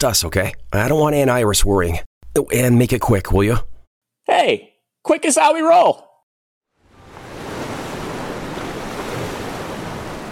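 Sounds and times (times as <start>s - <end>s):
speech: 0.0s - 3.7s, 4.4s - 6.1s
ocean surf breaking waves off the coast of Santorini in the Aegean Sea: 6.8s - 10.3s.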